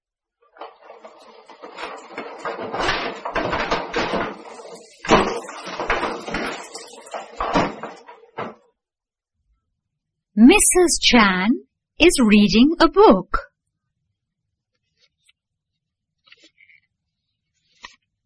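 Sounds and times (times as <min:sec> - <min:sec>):
dishes clinking and clattering while being washed and dried: 0:00.6 - 0:08.6
plates and pots knocking together: 0:00.6 - 0:08.6
speech: 0:10.4 - 0:13.4.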